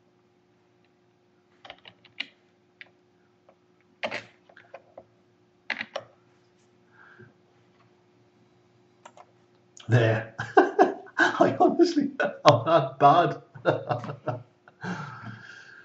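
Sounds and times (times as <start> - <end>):
typing an email on a computer keyboard: 5.7 - 6.0
speech: 9.9 - 10.3, 11.8 - 14.4
laughter: 9.9 - 15.8.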